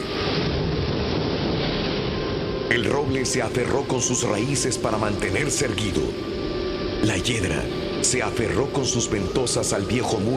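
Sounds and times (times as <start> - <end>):
dense loud rain: 0.0 - 8.1
deep rolling thunder: 0.0 - 9.0
speech: 2.7 - 6.3, 7.0 - 10.3.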